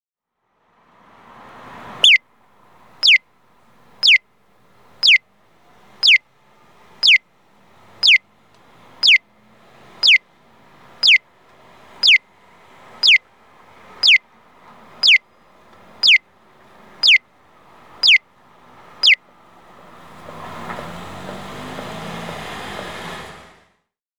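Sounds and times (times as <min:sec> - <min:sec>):
accessible pedestrian signal chirping piyo at a crossing in Inazawa Aichi: 0:02.0 - 0:02.2, 0:03.0 - 0:03.2, 0:04.0 - 0:06.3, 0:06.9 - 0:12.3, 0:12.9 - 0:13.3, 0:13.9 - 0:19.3.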